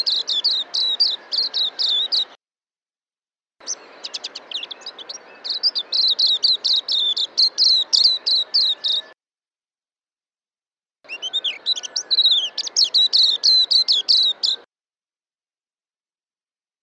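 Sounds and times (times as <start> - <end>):
white-eye singing quick high-pitched twittering phrases: 0.0 - 2.4, 3.6 - 9.2, 11.1 - 14.7.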